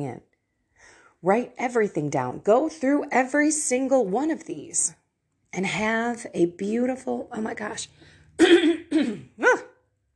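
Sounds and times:
speech: 0.0 - 9.6
phlegmy throat clearing in rasping bursts: 8.4 - 9.4.

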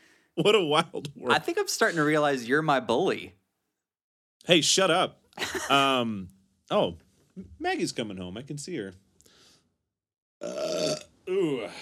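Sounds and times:
speech: 0.4 - 3.4, 4.4 - 9.0
person burping: 10.4 - 11.8.

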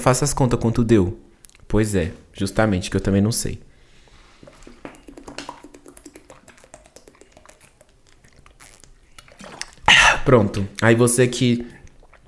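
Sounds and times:
speech: 0.0 - 3.7, 10.3 - 11.8
person drinking water from a plastic water bottle: 4.3 - 10.7, 11.6 - 12.2
plastic water bottle crinkling as it flexes: 4.4 - 10.7.

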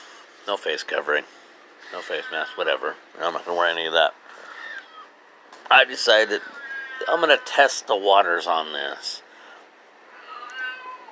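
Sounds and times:
speech: 0.5 - 4.2, 5.7 - 9.2
old cat yowling loudly: 4.5 - 5.1, 6.4 - 7.6, 10.1 - 11.1.

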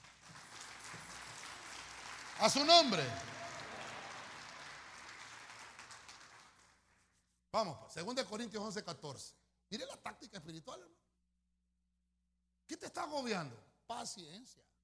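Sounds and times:
audience clapping hands for the Lord: 0.0 - 7.2
speech: 2.4 - 3.3, 7.6 - 11.0, 12.7 - 14.7.

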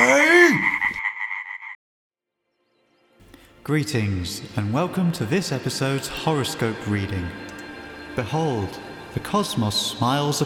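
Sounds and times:
frog croaking: 0.4 - 1.8
speech: 3.6 - 7.5, 8.2 - 10.4.

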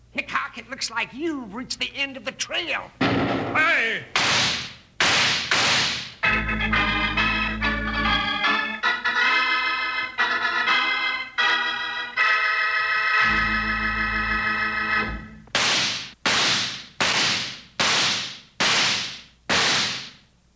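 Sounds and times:
speech: 0.6 - 4.6
Western-style gunshots: 4.2 - 6.1, 15.6 - 20.2
musical interlude: 6.2 - 15.5.

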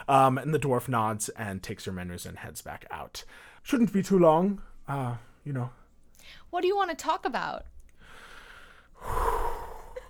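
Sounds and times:
speech: 0.1 - 7.7
deep breath drawn in sharply: 8.0 - 10.0.

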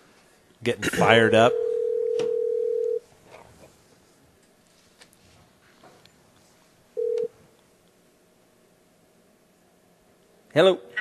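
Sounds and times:
speech: 0.6 - 1.6, 10.6 - 10.9
telephone dial tone while dialing a call: 1.5 - 3.0, 7.0 - 7.3.

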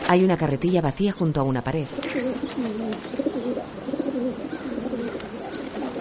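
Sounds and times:
soft outdoor hiss: 0.0 - 5.9
speech: 0.1 - 3.8
pigeons cooing: 1.8 - 5.9.

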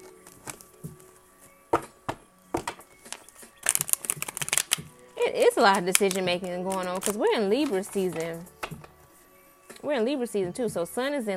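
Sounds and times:
deck of tarot cards being shuffled: 0.0 - 1.2, 2.6 - 5.0, 5.6 - 8.9
speech: 5.3 - 8.6, 9.8 - 11.3.

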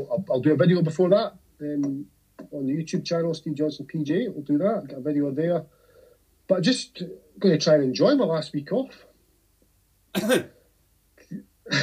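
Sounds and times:
speech: 0.0 - 5.8, 6.5 - 9.1, 10.1 - 10.6
person coughing: 10.2 - 10.6, 11.2 - 11.8.

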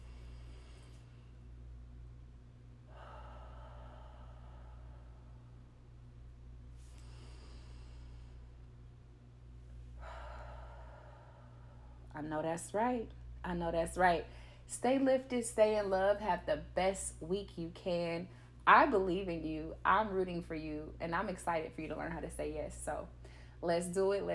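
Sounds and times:
slow deep breathing: 0.0 - 1.8, 2.7 - 9.0, 9.8 - 12.2, 23.2 - 23.6
steady low hum: 0.0 - 24.3
speech: 12.2 - 24.3.

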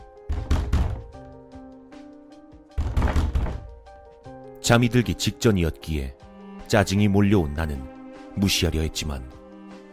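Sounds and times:
heavy dull knocking on a door: 0.2 - 1.4, 2.7 - 4.0
speech: 4.7 - 9.4.

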